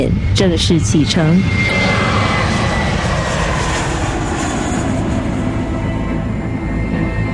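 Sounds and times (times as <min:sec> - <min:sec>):
speech: 0:00.0 - 0:02.1
airplane engine roaring while taxiing on a runway: 0:00.0 - 0:07.3.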